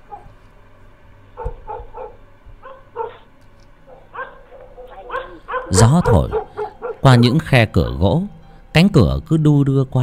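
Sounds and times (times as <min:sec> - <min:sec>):
neighbourhood dogs barking and yipping at night: 0:00.0 - 0:00.4, 0:01.4 - 0:03.3, 0:03.9 - 0:07.1
low steady hum: 0:00.0 - 0:10.0
speech: 0:05.7 - 0:10.0.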